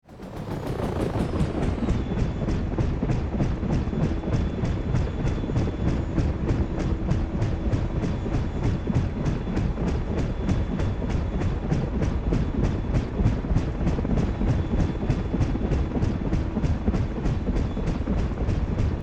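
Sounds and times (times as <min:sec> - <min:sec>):
helicopter blades going from fast to slow motion: 0:00.0 - 0:19.0.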